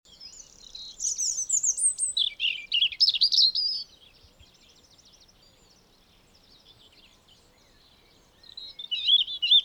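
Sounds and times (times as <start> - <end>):
European robin Erithacus rubecula singing: 0.1 - 3.9, 7.6 - 9.6.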